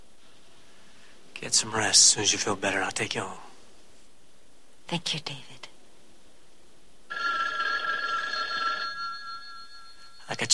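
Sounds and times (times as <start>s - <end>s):
speech: 1.4s - 3.5s, 4.9s - 5.6s, 10.3s - 10.5s
telephone bell ringing: 7.1s - 10.5s.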